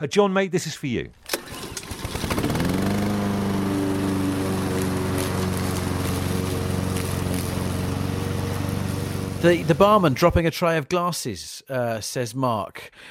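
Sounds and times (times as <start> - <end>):
speech: 0.0 - 1.2, 9.4 - 13.0
lawnmower engine pull-started and running: 1.2 - 10.2.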